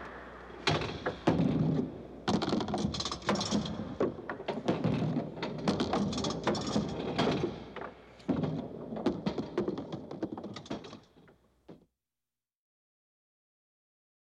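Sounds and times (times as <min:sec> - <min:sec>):
gambling machine with ball: 0:00.7 - 0:11.3.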